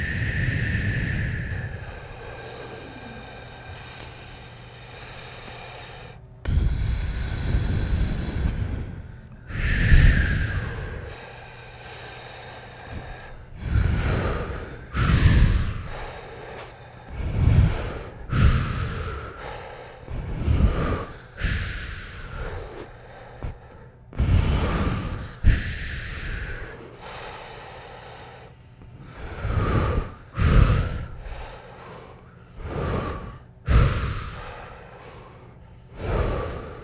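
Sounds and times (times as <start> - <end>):
big exhale: 0.0 - 36.8
rapid snort-like breathing during a breathing exercise: 0.0 - 36.8.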